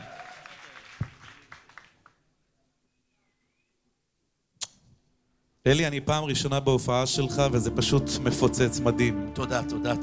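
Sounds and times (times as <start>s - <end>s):
audience clapping: 0.0s - 2.2s
speech: 5.7s - 10.0s.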